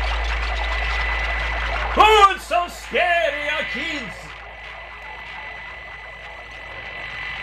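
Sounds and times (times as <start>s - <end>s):
hissy electronic music with static-like texture and stereo panning: 0.0s - 7.4s
speech: 2.0s - 4.2s.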